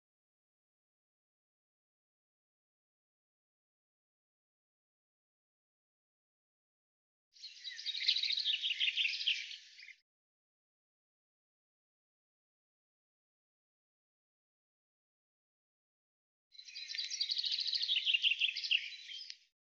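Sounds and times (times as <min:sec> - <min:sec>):
common chaffinch singing descending trilled notes: 0:07.4 - 0:09.9, 0:16.6 - 0:19.5.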